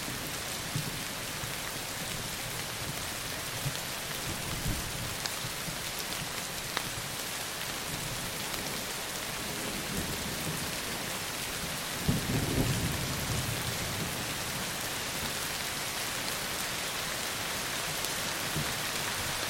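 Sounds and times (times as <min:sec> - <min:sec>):
heavy rain: 0:00.0 - 0:19.4.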